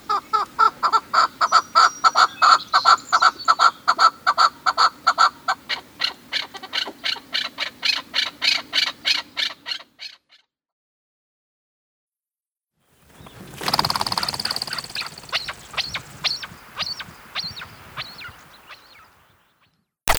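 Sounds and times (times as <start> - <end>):
chukar clucking calls: 0.0 - 10.2, 13.7 - 19.3.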